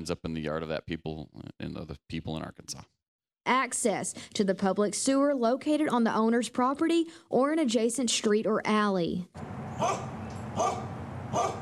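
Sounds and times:
speech: 0.0 - 11.6
dog barking: 9.8 - 11.6.

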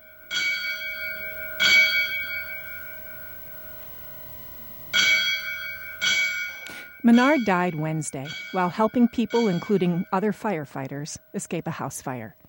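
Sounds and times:
bell rung for a firefighter's last alarm: 0.0 - 12.4
speech: 7.0 - 12.4.

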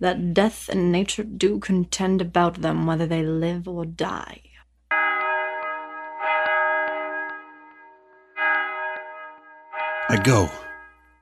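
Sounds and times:
speech: 0.0 - 4.5, 10.2 - 10.6
large bell tolling: 4.9 - 11.0.

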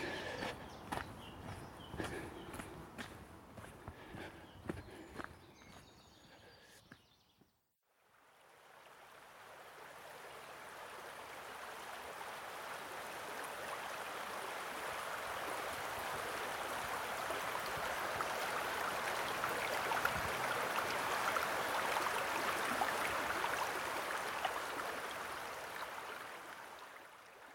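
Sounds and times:
river water rushing and gurgling beneath a bridge: 0.0 - 2.6, 8.2 - 27.5.

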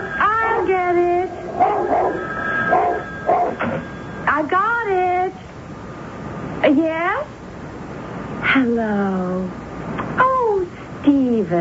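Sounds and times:
faint steady hum: 0.0 - 11.6
dog giving short pitched barks or yips: 1.6 - 3.6.

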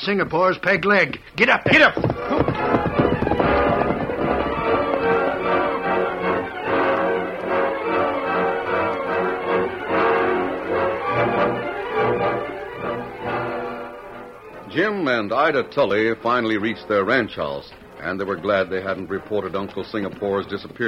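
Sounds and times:
speech: 0.0 - 2.6, 14.8 - 20.8
horse hooves clip-clopping as the horse runs: 1.1 - 20.8
horse whinnying: 1.7 - 5.2.

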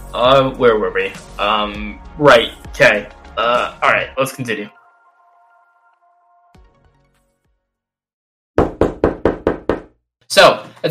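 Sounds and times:
speech: 0.1 - 4.8, 10.3 - 10.8
heavy knocking on a door: 8.6 - 9.9.

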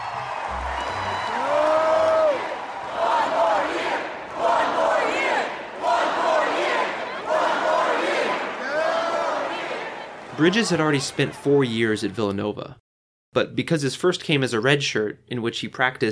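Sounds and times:
large arena crowd chanting in unison: 0.0 - 11.5
speech: 10.4 - 16.0.

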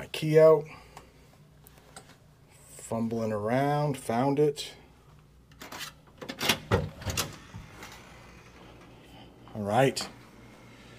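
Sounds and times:
speech: 0.2 - 0.8, 2.9 - 4.8, 9.6 - 10.2
hotel room door unlatched and swung open with rattling: 5.6 - 7.7.

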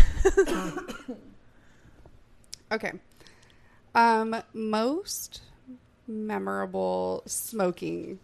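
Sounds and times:
person coughing: 0.0 - 1.3
speech: 0.2 - 1.4, 2.7 - 3.1, 3.9 - 8.2
faint breath: 1.5 - 2.1, 3.2 - 3.9.

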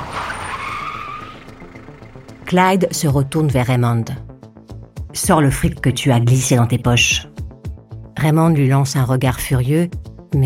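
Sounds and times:
car tires squealing as it skids to a stop on the roadside: 0.0 - 2.2
speech: 2.5 - 4.3, 5.2 - 7.3, 8.2 - 10.4.

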